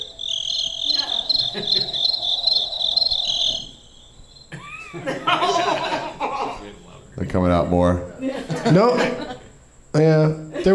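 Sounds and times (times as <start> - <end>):
crickets chirping loudly: 0.0 - 10.7
speech: 1.5 - 1.8, 7.2 - 9.2, 10.0 - 10.7
rough laughter-like noise: 4.5 - 6.6.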